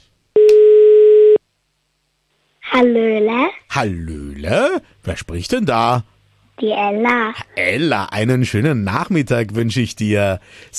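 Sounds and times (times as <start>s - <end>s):
telephone line tone after dialing a number for a phone-in call: 0.4s - 1.4s
speech: 2.8s - 10.7s.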